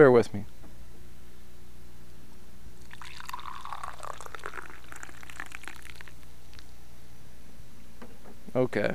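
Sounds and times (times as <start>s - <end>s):
speech: 0.0s - 0.5s, 8.6s - 8.9s
low steady hum: 0.0s - 8.9s
hot coffee pouring into a cup: 2.8s - 6.7s.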